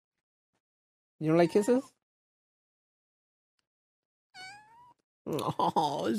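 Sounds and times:
speech: 1.2s - 2.0s, 5.3s - 6.1s
little female cat meowing: 4.4s - 5.0s.

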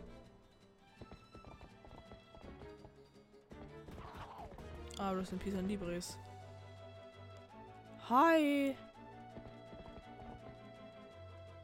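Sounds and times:
galloping horse hoofbeats in a video game: 0.0s - 5.5s, 8.8s - 11.6s
speech: 5.0s - 6.3s, 8.1s - 8.9s.

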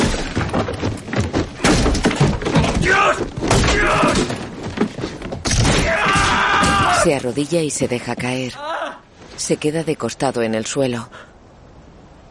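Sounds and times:
chairs hurled in anger: 0.0s - 7.1s
person's voice: 7.0s - 11.2s
speech: 7.1s - 8.7s, 9.5s - 11.3s.

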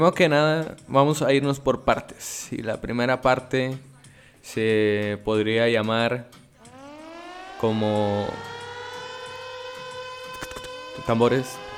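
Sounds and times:
speech: 0.0s - 6.4s, 7.6s - 8.5s, 11.1s - 11.6s
steady alarm siren wailing: 6.6s - 11.7s.

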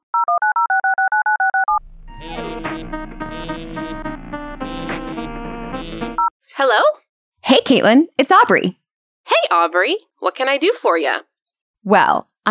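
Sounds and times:
electronic phone dialing beeps as a call is placed: 0.1s - 1.8s
bright music: 2.1s - 6.3s
speech: 6.6s - 12.4s.

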